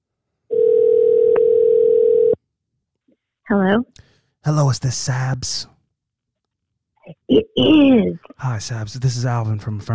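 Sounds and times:
steady telephone dial tone: 0.5 - 2.4
speech: 3.5 - 5.7, 7.3 - 9.9.

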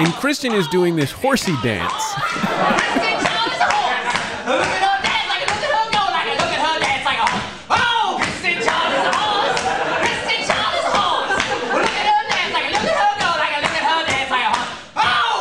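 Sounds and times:
speech: 0.0 - 3.2
laughter: 0.0 - 5.0, 8.5 - 12.2
person singing energetically: 0.0 - 7.4
rhythmic hand clapping: 0.0 - 15.3.

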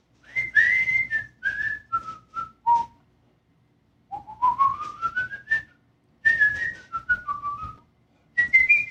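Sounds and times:
man whistling a tune: 0.2 - 3.0, 4.1 - 7.8, 8.4 - 8.8.

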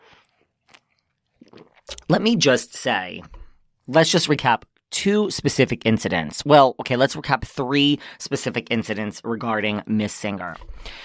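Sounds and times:
person sipping and slurping coffee: 0.0 - 2.1
person swallowing coffee: 0.0 - 2.1
speech: 2.1 - 11.0.

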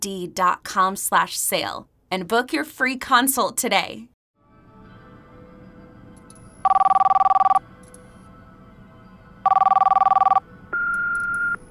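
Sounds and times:
speech: 0.0 - 4.1
telephone ringing in warbling bursts: 6.6 - 7.6, 9.4 - 11.6.

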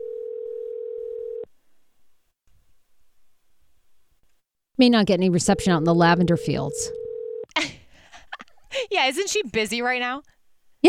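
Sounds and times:
telephone ringback tone during an outgoing call: 0.0 - 1.5, 6.3 - 7.5
speech: 4.8 - 7.0, 9.0 - 10.8.

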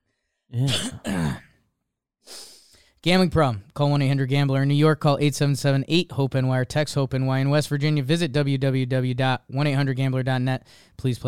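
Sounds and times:
speech: 0.5 - 1.4, 3.0 - 11.2
loud throat clearing: 0.6 - 1.6.

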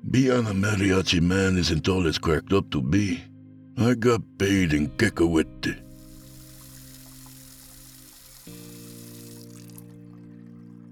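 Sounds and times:
speech: 0.1 - 5.8
running tap water while washing dishes: 5.8 - 10.9.

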